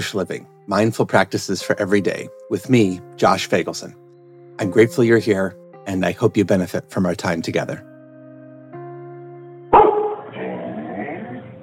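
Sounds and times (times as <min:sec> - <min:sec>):
speech: 0:00.0 - 0:04.0, 0:04.6 - 0:07.9
family dog barking: 0:09.7 - 0:10.4.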